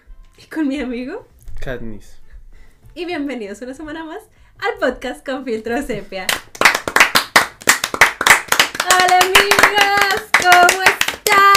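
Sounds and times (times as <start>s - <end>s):
speech: 0.4s - 2.2s, 3.0s - 6.4s
hands clapping: 6.3s - 11.5s.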